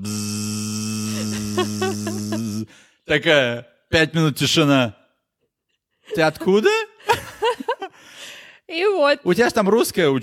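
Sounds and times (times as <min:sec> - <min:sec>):
voice imitating a buzzing fly: 0:00.0 - 0:02.7
laughter: 0:01.1 - 0:02.7, 0:06.2 - 0:08.0
speech: 0:01.6 - 0:02.2, 0:03.1 - 0:05.0, 0:06.1 - 0:06.8, 0:08.7 - 0:10.2.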